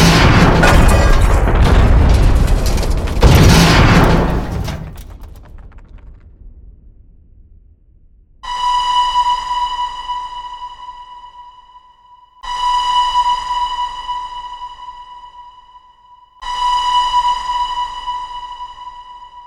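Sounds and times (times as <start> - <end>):
train collision crash: 0.0 - 6.5
steady high-pitched tonal horn or alarm: 8.4 - 19.4.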